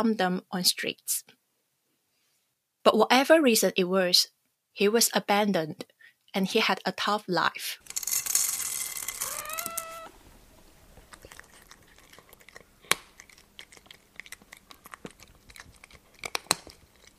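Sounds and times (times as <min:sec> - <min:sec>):
speech: 0:00.0 - 0:01.4, 0:02.8 - 0:08.0
cat meowing: 0:09.2 - 0:10.2
cat chewing food: 0:10.2 - 0:17.1.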